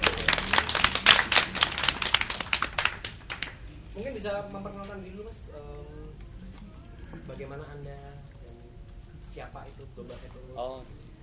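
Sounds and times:
audience clapping at a design business talk event: 0.0 - 3.8
speech: 4.2 - 6.2, 7.1 - 8.3, 9.4 - 11.1.

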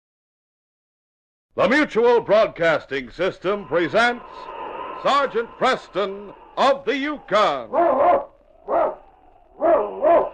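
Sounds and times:
speech: 1.6 - 9.0, 9.6 - 10.3
husky sled dog barking: 7.7 - 9.0, 9.6 - 10.3.

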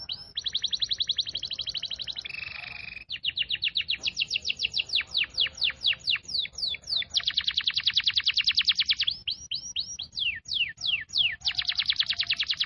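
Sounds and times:
canary song in the cengkok mewah style: 0.0 - 12.6.

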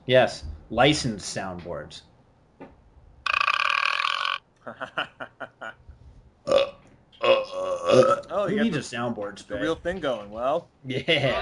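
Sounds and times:
speech: 0.1 - 2.7, 4.7 - 5.5, 7.9 - 11.4
person belching: 3.3 - 4.4, 6.5 - 8.3
short croaking gulps: 3.3 - 4.4, 6.5 - 8.3
laughter: 4.7 - 5.8, 10.9 - 11.4.

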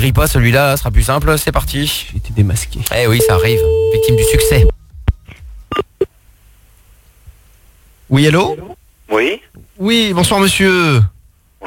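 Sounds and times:
speech: 0.0 - 4.7, 8.1 - 11.6
telephone dialing tones as a call is placed: 3.2 - 4.7.

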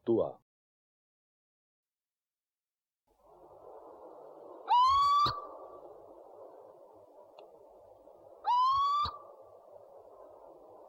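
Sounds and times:
background noise: 0.0 - 0.4, 3.1 - 10.8
owl whistled call: 4.5 - 5.9, 8.4 - 9.8.

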